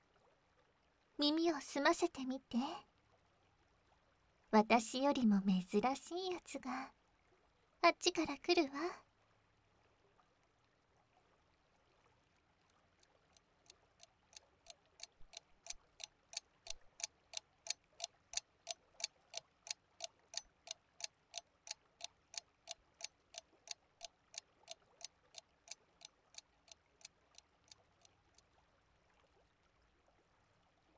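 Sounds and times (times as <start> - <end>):
speech: 1.2 - 2.9, 4.5 - 7.0, 7.8 - 9.0
clock ticking: 14.4 - 28.2.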